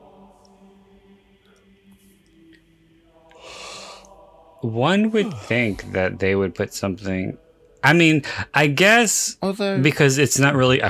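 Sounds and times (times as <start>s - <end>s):
speech: 4.6s - 10.8s
person yawning: 5.1s - 5.7s.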